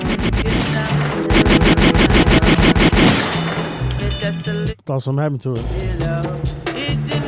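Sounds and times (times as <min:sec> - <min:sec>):
scattered gunshot cracks: 0:00.0 - 0:03.7
burst of rapid gunfire sound effect: 0:00.0 - 0:03.9
speech: 0:04.4 - 0:07.1.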